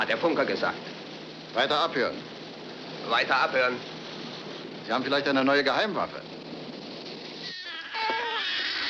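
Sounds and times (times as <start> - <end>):
speech: 0.1 - 2.4, 3.1 - 3.9, 4.9 - 6.3
baby crying: 7.4 - 8.8.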